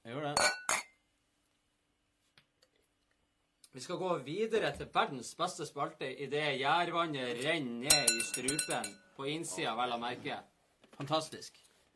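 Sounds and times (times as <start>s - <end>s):
glasses clinking in a toast: 0.4s - 1.0s, 7.8s - 9.2s
speech: 3.7s - 11.7s.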